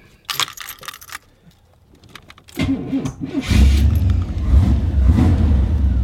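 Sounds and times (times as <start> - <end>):
metallic rattles: 0.3 - 2.6
V8 car engine of remotely driven full-size car starting: 2.5 - 6.0.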